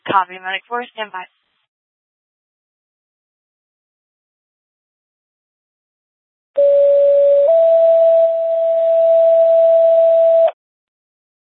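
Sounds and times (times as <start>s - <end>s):
speech: 0.1s - 1.4s
non-emergency dispatch paging tones over a radio channel: 6.6s - 10.5s.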